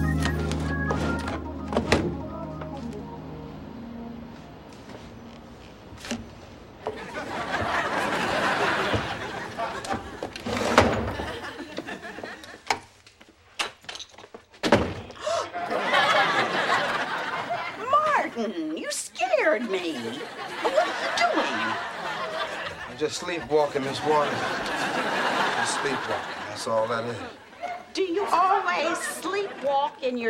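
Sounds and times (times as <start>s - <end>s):
unlocked door being opened and pushed shut: 0.2s - 2.7s, 5.9s - 6.4s, 9.8s - 11.4s, 13.6s - 15.1s
door closing slam: 0.9s - 2.3s, 9.9s - 11.4s, 14.6s - 15.1s
laughter: 6.8s - 12.7s, 15.2s - 18.1s, 19.6s - 30.0s
speech: 23.3s - 24.5s, 25.8s - 27.3s, 30.1s - 30.2s.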